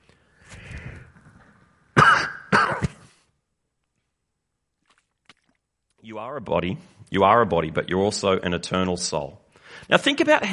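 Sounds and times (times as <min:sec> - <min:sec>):
sharp coughs: 0:02.0 - 0:03.1
throat clearing: 0:02.0 - 0:03.1
speech: 0:06.1 - 0:10.5.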